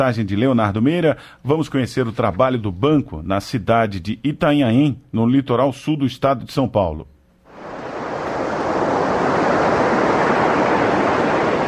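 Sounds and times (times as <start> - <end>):
speech: 0.0 - 7.1
sea waves breaking on a shore: 7.5 - 11.6.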